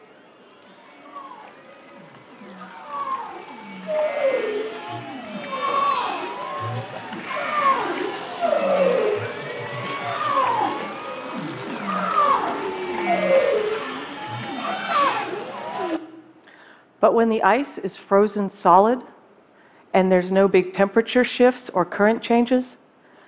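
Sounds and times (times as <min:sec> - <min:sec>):
Arctic marine mammal underwater calls: 0:00.7 - 0:16.1
speech: 0:17.0 - 0:19.1, 0:19.9 - 0:22.8.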